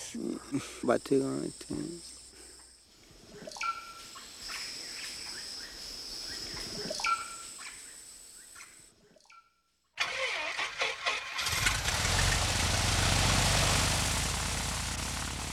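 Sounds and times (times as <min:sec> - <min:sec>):
speech: 0:00.1 - 0:02.2
small mission plane engine starting: 0:10.0 - 0:15.5.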